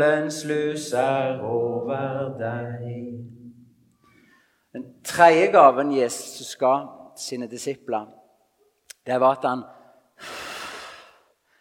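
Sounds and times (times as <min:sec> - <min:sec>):
speech: 0:00.0 - 0:03.4, 0:04.7 - 0:08.2, 0:09.0 - 0:10.4
forceful breath blown out: 0:10.2 - 0:11.5.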